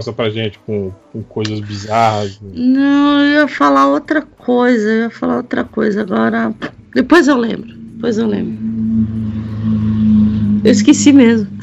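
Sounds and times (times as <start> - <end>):
speech: 0.0 - 9.2, 10.6 - 11.6
motorcycle engine droning passing on the street: 5.4 - 11.6.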